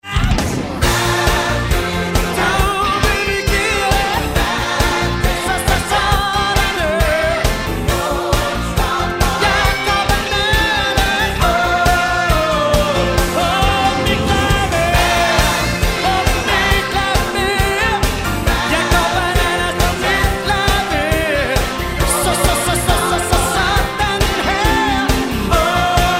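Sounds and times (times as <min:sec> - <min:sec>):
piano: 0:00.0 - 0:26.1.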